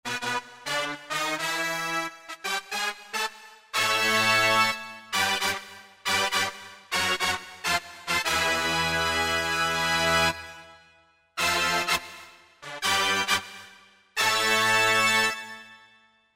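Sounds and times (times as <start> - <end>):
Roland JD-990 synthesizer brass section factory patch: 0.1 - 16.0.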